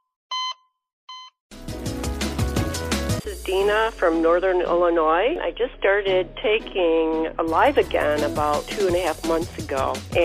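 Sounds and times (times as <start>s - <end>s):
short bright electronic beeps: 0.3s - 1.4s
busy music: 1.5s - 10.2s
speech: 3.3s - 10.2s.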